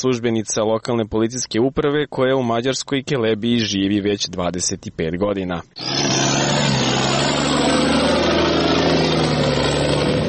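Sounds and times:
speech: 0.0 - 6.9
military truck engine rumbling: 5.7 - 10.2.

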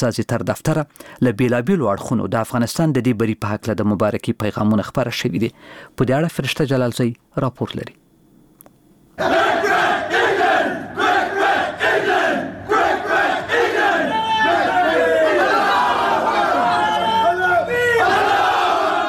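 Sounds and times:
speech: 0.0 - 8.0, 9.2 - 9.4
cricket team players chanting together: 9.2 - 19.0
cricket team players shouting and cheering to celebrate a win: 9.2 - 19.0.

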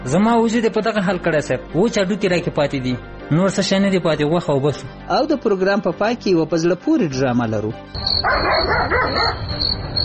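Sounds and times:
speech: 0.0 - 10.0
dog barking and yelping at night around a house: 8.0 - 9.5.

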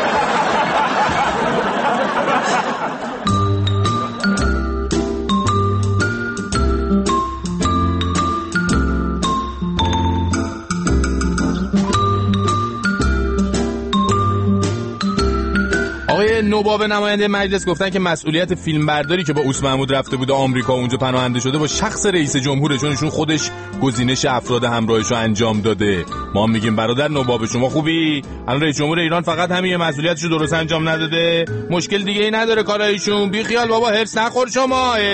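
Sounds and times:
laughter: 0.0 - 4.6
phone ringing with bright tinkling melodic ringtone: 3.2 - 16.0
speech: 16.6 - 35.1.

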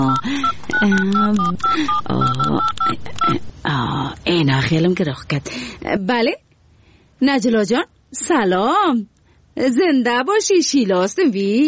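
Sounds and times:
telephone number dialled on a touch-tone keypad: 0.0 - 3.4
speech: 0.0 - 6.4, 7.2 - 11.6.

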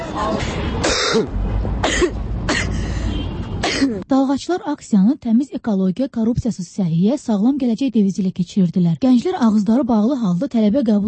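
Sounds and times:
steady noise: 0.0 - 11.0
speech: 0.2 - 1.5, 3.8 - 11.0
young protesters with covered mouths coughing at a street demonstration: 0.3 - 3.0, 3.6 - 4.0.

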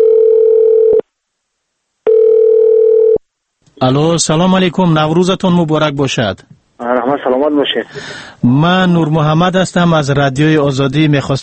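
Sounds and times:
telephone ringback tone on a call to Moscow: 0.0 - 1.0, 2.0 - 3.2
speech: 3.8 - 11.4.

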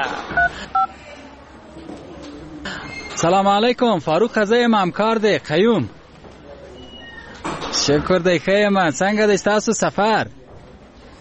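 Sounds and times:
touch-tone beeps as a telephone number is dialed: 0.4 - 0.9
speech: 3.2 - 6.0, 7.9 - 10.4.

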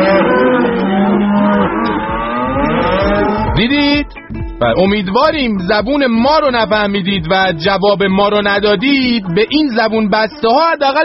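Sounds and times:
cows mooing: 0.0 - 3.6
speech: 3.6 - 11.0.

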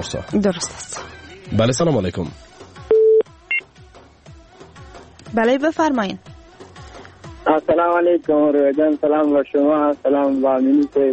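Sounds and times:
speech: 0.0 - 2.6, 5.3 - 6.3, 7.5 - 11.1
telephone dialing tones for a call: 2.9 - 3.2.

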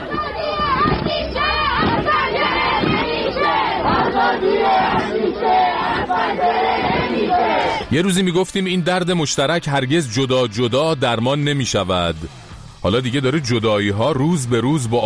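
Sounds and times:
large crowd of protesters chanting slogans at night in Ekbatan, Tehran, Iran: 0.0 - 8.2
speech: 7.3 - 15.0.

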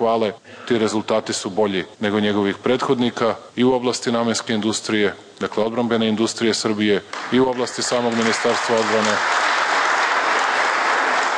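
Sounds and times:
speech: 0.0 - 9.5
members of parliament applauding a minister: 7.1 - 11.3.

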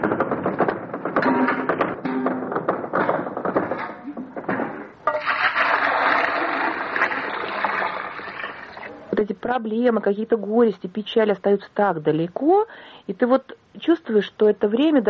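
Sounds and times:
metal bucket clanking and knocking: 0.0 - 9.1
water gushing out of a bucket drawn from a well: 5.1 - 9.1
speech: 9.5 - 15.0.

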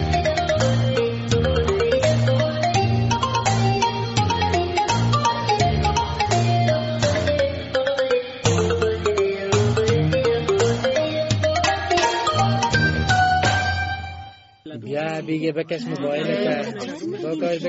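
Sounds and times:
loud melodic mobile phone ringtone: 0.0 - 14.6
person talking: 14.7 - 17.6.

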